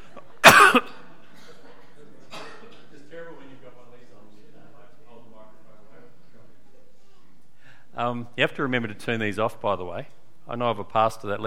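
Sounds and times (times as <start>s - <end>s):
person coughing hard: 0.4s - 1.6s, 2.3s - 2.7s
speech: 8.0s - 11.4s.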